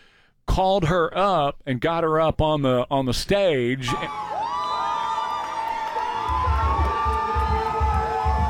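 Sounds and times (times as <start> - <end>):
speech: 0.6 - 4.3
large concert crowd screaming and cheering: 3.9 - 8.4
deep rhythmic thumps of music: 6.1 - 8.4.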